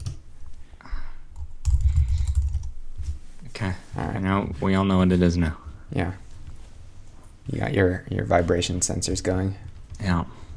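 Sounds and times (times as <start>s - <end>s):
typing a password on a computer keyboard: 0.0s - 0.2s, 1.4s - 2.8s
speech: 3.6s - 6.2s, 7.5s - 10.4s.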